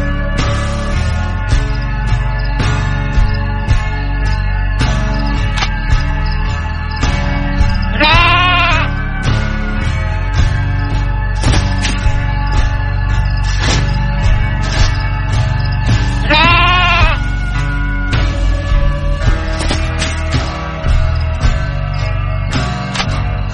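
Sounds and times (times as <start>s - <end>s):
full musical backing: 0.0s - 23.5s
sheep bleating: 7.9s - 9.0s, 16.2s - 17.3s.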